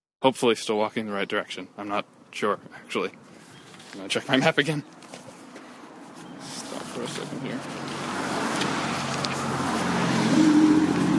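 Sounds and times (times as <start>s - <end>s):
speech: 0.2s - 3.3s, 3.9s - 5.0s, 7.0s - 8.0s
broadband road noise: 0.2s - 11.1s
loud car passing by: 6.4s - 11.1s.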